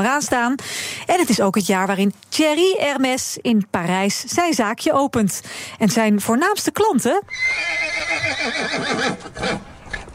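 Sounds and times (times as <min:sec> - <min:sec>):
speech: 0:00.0 - 0:09.7
horse neighing: 0:07.3 - 0:09.7.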